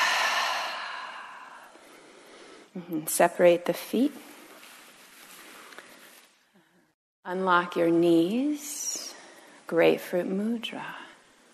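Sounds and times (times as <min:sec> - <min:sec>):
exhale through the mouth during a standing yoga breathing exercise: 0:00.0 - 0:02.7
speech: 0:02.8 - 0:04.3, 0:07.3 - 0:08.9, 0:09.7 - 0:11.0.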